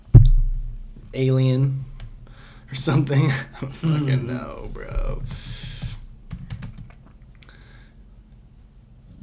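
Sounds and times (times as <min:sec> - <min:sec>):
low steady hum: 0:00.0 - 0:09.2
speech: 0:01.2 - 0:01.9, 0:02.7 - 0:05.7
typing on a computer keyboard: 0:06.3 - 0:07.0.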